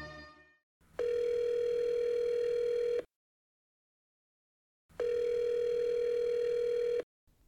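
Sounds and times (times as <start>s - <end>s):
telephone dial tone: 1.0s - 3.1s, 5.0s - 7.0s.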